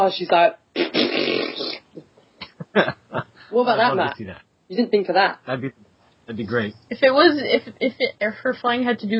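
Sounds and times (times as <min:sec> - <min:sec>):
speech: 0:00.0 - 0:02.1, 0:02.8 - 0:09.1
loud buzzing mouth-made fart imitation: 0:00.7 - 0:02.0
laughter: 0:02.5 - 0:04.3.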